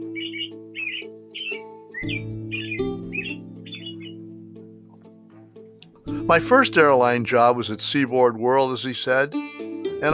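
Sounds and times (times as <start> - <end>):
birds squawking and chirping: 0.0 - 4.2
speech: 6.3 - 10.1.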